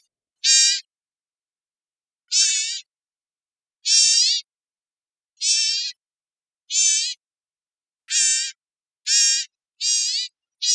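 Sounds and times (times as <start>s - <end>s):
bird harsh nasal calls in Costa Rica: 0.4s - 0.9s, 2.3s - 2.9s, 3.8s - 4.5s, 5.4s - 6.0s, 6.7s - 7.2s, 8.1s - 10.7s.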